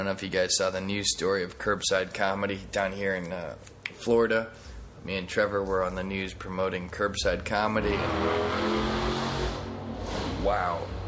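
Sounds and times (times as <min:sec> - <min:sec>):
speech: 0:00.0 - 0:09.2, 0:10.4 - 0:10.9
car engine revving hard as it peels out: 0:07.6 - 0:11.0.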